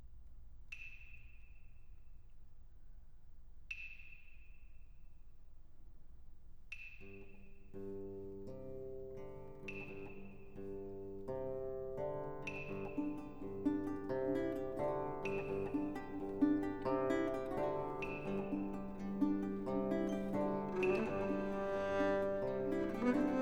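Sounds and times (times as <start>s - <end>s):
guitar: 7.8s - 23.4s
soprano viol improvisation: 11.4s - 23.4s
double harp: 11.8s - 23.4s.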